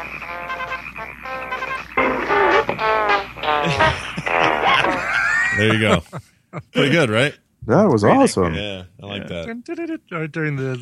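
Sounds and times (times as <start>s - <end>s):
music from a spinning record slowed by a frog: 0.0s - 5.9s
laughter: 3.6s - 6.8s
speech: 5.6s - 10.7s.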